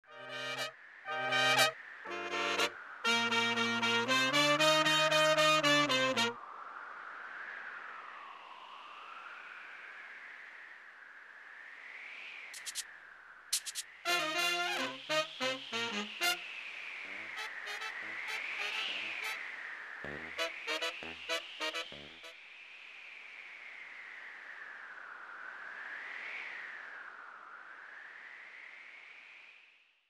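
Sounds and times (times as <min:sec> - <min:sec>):
swinging fanfare: 0:00.0 - 0:06.4, 0:14.1 - 0:16.4, 0:17.1 - 0:19.4, 0:20.1 - 0:22.3.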